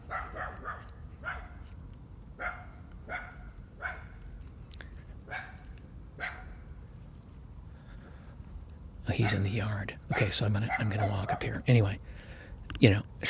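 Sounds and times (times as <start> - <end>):
dogs barking in short sharp bursts: 0.0 - 1.7, 2.4 - 4.2, 5.2 - 6.6, 9.1 - 11.6
speech: 9.2 - 12.2, 12.8 - 13.2.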